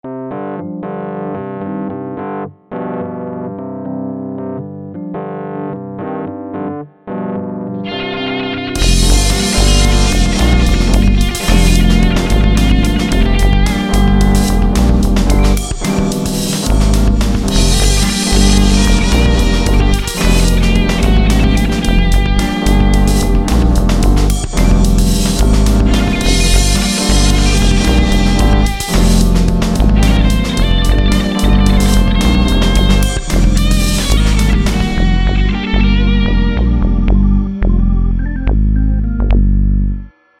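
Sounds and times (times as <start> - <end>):
keyboard: 0.0 - 40.3
guitar: 7.8 - 39.5.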